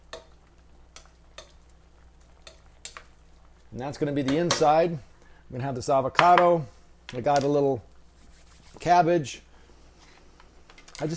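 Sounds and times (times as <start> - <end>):
low steady hiss of onions and spinach cooking in a pan without oil: 0.0 - 11.1
scrapes and clicks of stirring onions and spinach in a pan: 0.1 - 3.6
speech: 3.7 - 7.9, 8.8 - 9.5, 11.0 - 11.1.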